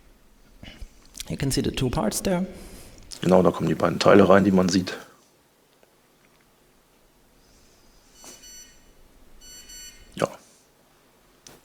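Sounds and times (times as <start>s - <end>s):
speech: 1.3s - 5.1s
mobile phone beeping on receiving an operator logo: 8.1s - 10.2s.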